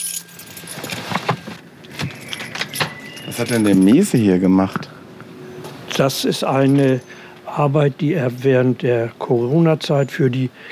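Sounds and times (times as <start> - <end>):
car keys jangling as a key is taken after parking: 0.0 - 1.3, 2.0 - 4.2
speech: 3.3 - 4.9, 6.0 - 10.6.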